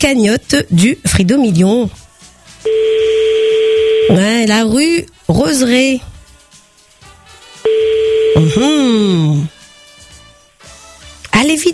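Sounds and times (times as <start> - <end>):
speech: 0.0 - 2.0, 4.1 - 6.1, 7.6 - 9.6, 11.4 - 11.7
electronic telephone ringback tone on an outgoing call: 2.7 - 4.3, 7.7 - 8.8.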